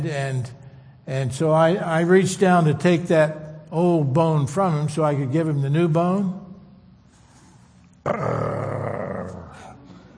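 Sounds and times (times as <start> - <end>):
speech: 0.0 - 6.4, 8.0 - 8.7
person's voice imitating a dog growling: 8.0 - 9.8.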